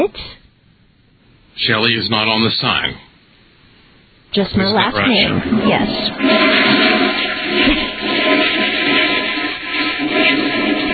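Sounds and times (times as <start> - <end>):
speech: 1.6 - 3.1, 4.3 - 6.9
toilet flush with water rushing down the plumbing: 5.0 - 10.9.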